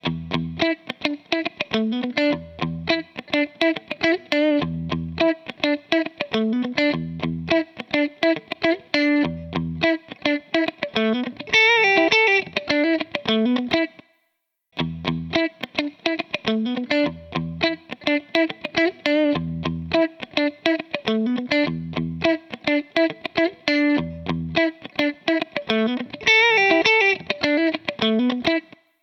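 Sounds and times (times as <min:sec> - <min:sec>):
guitar tone ringtone of a mobile phone: 0:00.0 - 0:13.9, 0:14.8 - 0:28.8.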